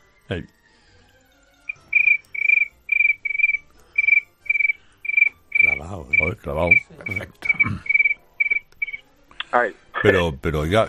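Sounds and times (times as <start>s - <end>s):
speech: 0.3s - 0.6s, 5.9s - 8.0s, 9.5s - 10.8s
man imitating a cricket chirping: 1.7s - 8.6s.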